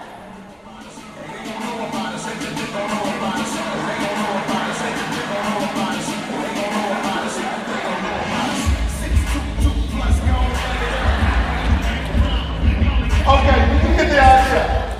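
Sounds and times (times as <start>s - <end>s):
boxer's walkout song over speakers: 0.0s - 14.9s
laughter: 0.0s - 14.9s
heavy thumping bass beat: 8.7s - 14.9s.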